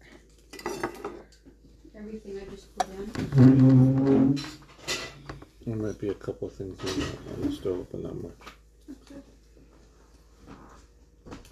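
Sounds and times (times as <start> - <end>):
dishes and cutlery clattering while washing up: 0.5 - 1.4, 3.2 - 5.4, 6.6 - 7.7
speech: 2.0 - 3.6, 5.7 - 8.6.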